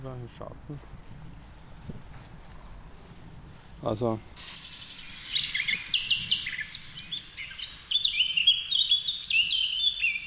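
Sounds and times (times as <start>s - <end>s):
speech: 0.0s - 1.1s, 3.8s - 4.6s
high fluting bird song reference recording from a bird identification app: 4.4s - 10.2s.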